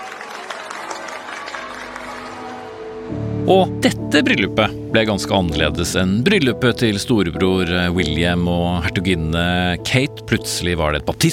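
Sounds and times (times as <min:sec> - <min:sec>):
outdoor crowd clapping outside St George's Chapel in London: 0:00.0 - 0:03.1
large outdoor crowd cheering outside St George's Chapel in London: 0:00.0 - 0:03.7
speech: 0:03.1 - 0:11.3.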